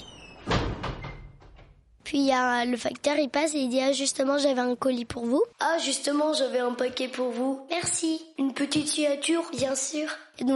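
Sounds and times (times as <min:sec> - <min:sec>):
apartment building door pulled shut with a solid thud: 0:00.0 - 0:01.9
speech: 0:02.1 - 0:10.5.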